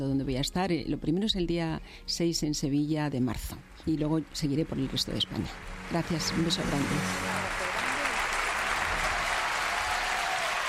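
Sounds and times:
speech: 0.0 - 7.4
audience applause: 5.6 - 10.6.

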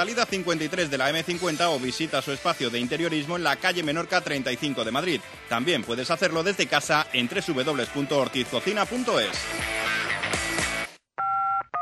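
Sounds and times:
speech: 0.0 - 9.9
telephone keypad dialing tones: 11.2 - 11.8.

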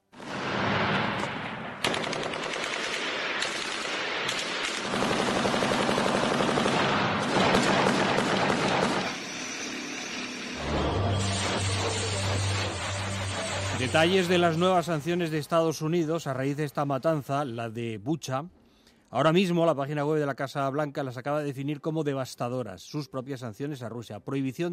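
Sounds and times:
roaring background: 0.0 - 16.4
machine gun fire: 0.1 - 9.3
speech: 13.9 - 24.7.

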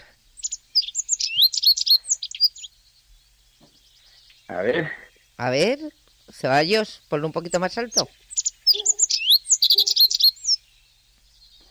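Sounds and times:
corn bunting song: 0.0 - 11.6
speech: 4.5 - 8.3.

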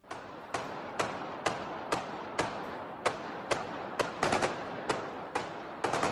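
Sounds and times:
automatic weapon bursts of gunfire: 0.0 - 6.1.

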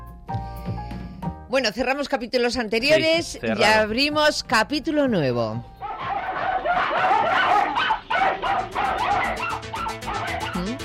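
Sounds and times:
speech: 1.5 - 5.7
two dogs barking and yipping: 5.8 - 10.8.

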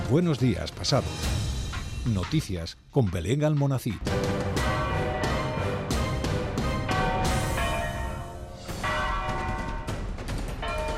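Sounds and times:
speech: 0.1 - 1.4, 2.1 - 4.3
convent church bells pealing: 4.5 - 9.9, 10.6 - 10.9.

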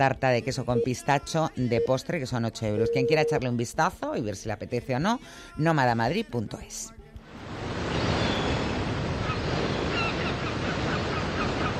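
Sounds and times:
speech: 0.0 - 7.8
sea waves breaking on the shore: 7.3 - 11.7.

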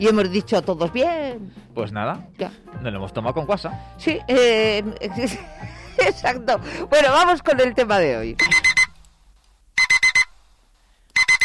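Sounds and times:
speech: 0.0 - 8.7
alarm clock ringing with shrill electronic beeps: 8.4 - 9.0, 9.8 - 10.3, 11.2 - 11.4.

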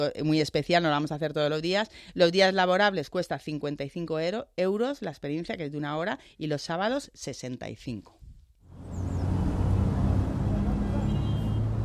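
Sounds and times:
speech: 0.0 - 8.2
city traffic rumble: 8.7 - 11.8.

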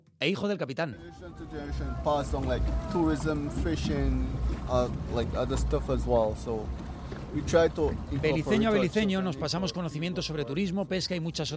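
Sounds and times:
speech: 0.2 - 11.5
people talking loudly: 0.9 - 11.5
motorboat engine rumbling crossing mangroves: 1.0 - 10.6
wind buffeting the microphone: 1.2 - 9.2.

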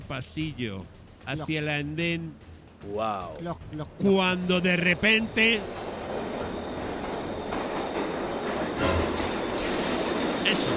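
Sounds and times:
speech: 0.1 - 6.2
metro train arriving at a station platform: 3.9 - 10.7
metro train wheels squealing: 4.7 - 10.7.

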